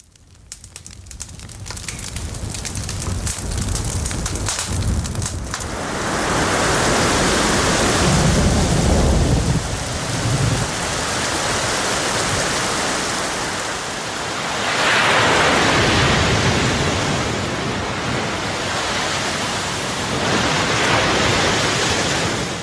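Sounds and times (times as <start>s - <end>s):
steady rain pouring down: 0.0s - 22.6s
ocean waves rushing: 5.6s - 22.6s.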